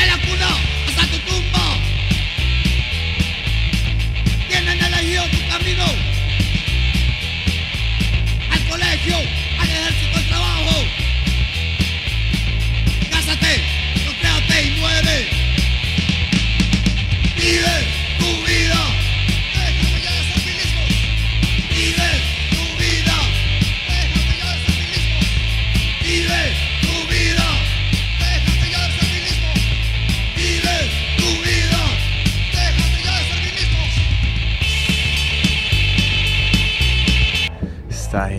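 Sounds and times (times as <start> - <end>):
harsh yelled vocals: 0.0 - 2.4, 4.3 - 6.5, 8.4 - 11.2, 12.9 - 16.0, 17.2 - 37.2
loud dense hardcore punk song: 0.0 - 37.9
distorted guitars: 0.0 - 38.3.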